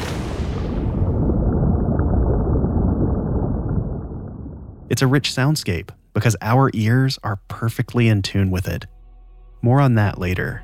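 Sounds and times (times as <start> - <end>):
underwater ocean rumble: 0.0 - 4.9
speech: 4.9 - 8.9, 9.6 - 10.6.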